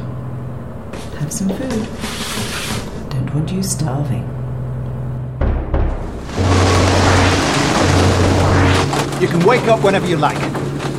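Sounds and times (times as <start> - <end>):
speech: 0.9 - 4.4, 9.2 - 10.6
deep rumbling of thunder: 5.4 - 9.6
heavy rain hissing: 6.2 - 9.4.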